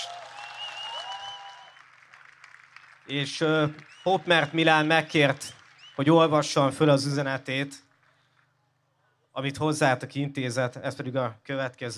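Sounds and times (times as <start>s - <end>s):
audience applauding: 0.0s - 8.6s
speech: 3.1s - 7.8s, 9.4s - 11.9s.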